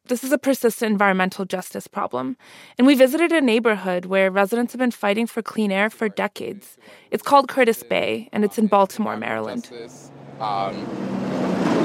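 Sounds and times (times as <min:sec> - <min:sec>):
speech: 0:00.1 - 0:11.3
heavy truck rumbling past in Curtis Bay industrial harbor area of Baltimore: 0:09.6 - 0:11.8.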